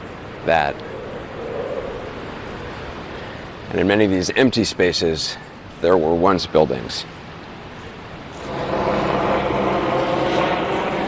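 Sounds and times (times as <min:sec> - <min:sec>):
speech: 0:00.4 - 0:01.0, 0:03.7 - 0:07.2
helicopter passing overhead: 0:08.4 - 0:11.0.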